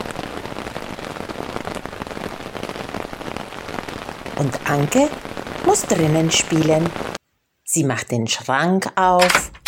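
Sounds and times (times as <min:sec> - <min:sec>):
steady rain pattering on a hard surface: 0:00.0 - 0:07.3
speech: 0:04.4 - 0:09.5.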